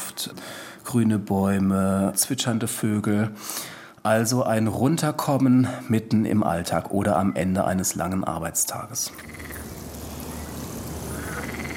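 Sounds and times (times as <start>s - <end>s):
speech: 0.2s - 9.6s
frogs croaking in a city park: 9.1s - 11.7s.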